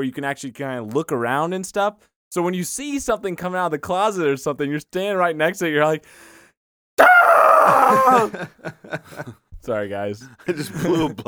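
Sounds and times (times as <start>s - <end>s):
speech: 0.0s - 6.4s, 7.0s - 11.2s
person gasping: 7.0s - 8.4s
person screaming loudly: 7.0s - 8.4s
laughter: 7.7s - 9.3s, 10.5s - 11.2s.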